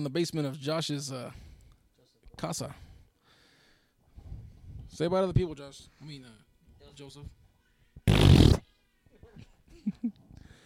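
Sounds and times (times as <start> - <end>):
speech: 0.0 - 1.5, 2.4 - 2.8, 4.9 - 6.4, 7.0 - 7.4
loud raspy fart noise: 8.0 - 8.6.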